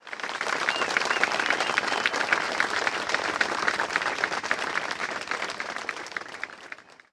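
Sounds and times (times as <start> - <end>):
golf clap: 0.0 - 7.1.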